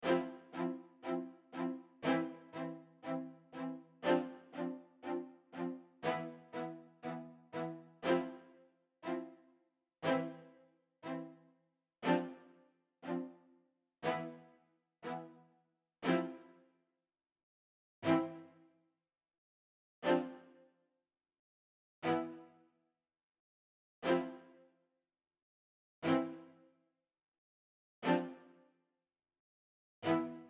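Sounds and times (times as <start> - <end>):
string rhythm accompaniment: 0.0 - 9.4, 10.0 - 11.4, 12.0 - 16.6, 18.0 - 18.6, 20.0 - 20.6, 22.0 - 22.6, 24.0 - 24.5, 26.0 - 26.6, 28.0 - 28.5, 30.0 - 30.4.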